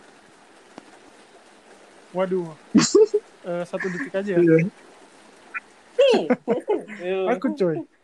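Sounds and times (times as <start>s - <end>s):
speech: 2.1s - 4.9s, 6.1s - 8.0s
voice imitating the cackling laugh of a female ghost: 2.8s - 3.2s, 3.8s - 4.2s, 6.0s - 7.1s.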